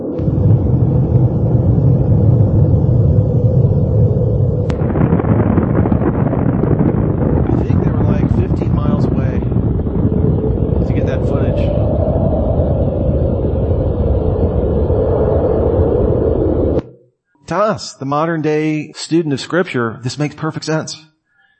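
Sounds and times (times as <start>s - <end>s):
thermonuclear bomb test explosion roar: 0.1s - 17.0s
windy blustering noise: 0.2s - 16.9s
speech: 17.8s - 21.1s.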